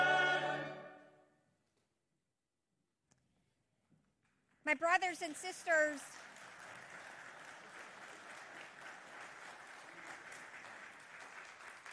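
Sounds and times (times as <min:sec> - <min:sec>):
speech: 0:04.7 - 0:06.2
audience applauding: 0:05.0 - 0:11.9.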